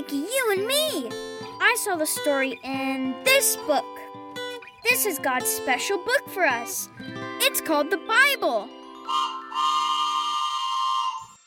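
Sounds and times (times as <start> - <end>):
speech: 0.0 - 4.0, 4.8 - 9.3
steam train whistle blowing: 9.1 - 11.4.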